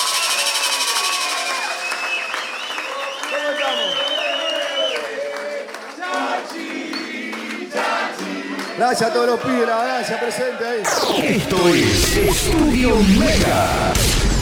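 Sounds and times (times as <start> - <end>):
whistles from crowd: 0.0 - 5.4
large crowd applauding: 0.0 - 9.6
large crowd cheering: 0.0 - 11.8
speech: 8.8 - 14.3.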